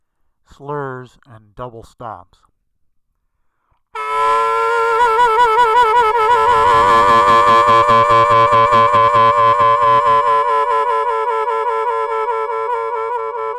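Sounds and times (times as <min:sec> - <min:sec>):
slurred double stops on strings: 0:04.2 - 0:12.3.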